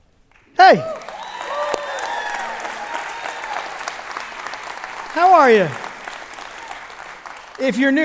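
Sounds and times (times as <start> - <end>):
audience clapping after intro bumper: 0.3 - 8.0
speech: 0.6 - 1.0, 5.2 - 5.8, 7.6 - 8.0
scattered whoops and cheers from audience: 0.6 - 4.5, 6.4 - 7.0.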